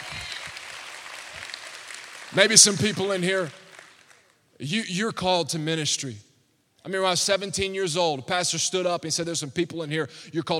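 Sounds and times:
crowd clapping: 0:00.0 - 0:04.4
speech: 0:02.3 - 0:03.6, 0:04.6 - 0:10.5.

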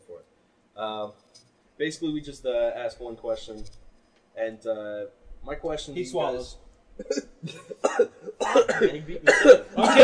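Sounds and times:
speech: 0:00.8 - 0:03.8, 0:04.4 - 0:10.0
person coughing after inhaling saliva: 0:07.0 - 0:10.0.

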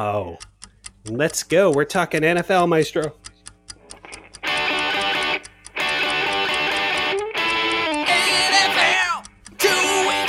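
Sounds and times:
speech: 0:00.0 - 0:03.2
countdown clock ticking: 0:00.0 - 0:10.2
loud dense distorted music bed: 0:03.9 - 0:10.2.

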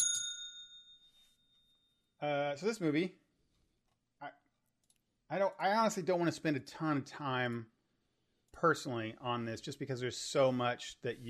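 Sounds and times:
bright bell ding as spoiler warning: 0:00.0 - 0:01.9
speech: 0:02.2 - 0:03.2, 0:05.3 - 0:07.7, 0:08.5 - 0:11.2.

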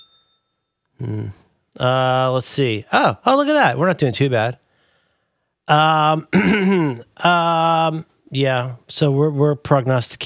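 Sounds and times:
single bell ding with a thin ringing tone: 0:00.0 - 0:00.9
speech: 0:01.0 - 0:04.6, 0:05.7 - 0:10.2.

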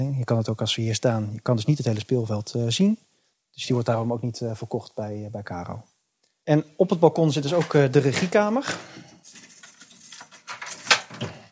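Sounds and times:
speech: 0:00.0 - 0:09.1
large old-fashioned bunch of keys jangling: 0:09.1 - 0:11.4.

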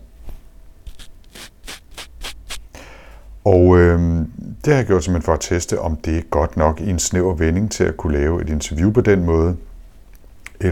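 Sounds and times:
rough rubbing on a lavalier microphone foam windscreen: 0:00.9 - 0:02.7
speech: 0:03.4 - 0:09.7.

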